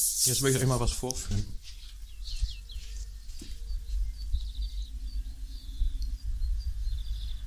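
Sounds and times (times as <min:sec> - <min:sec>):
speech: 0:00.0 - 0:01.6
birds chirping and tweeting outdoors heard from a balcony: 0:00.4 - 0:07.4
steady low rumble of noise: 0:02.0 - 0:07.4.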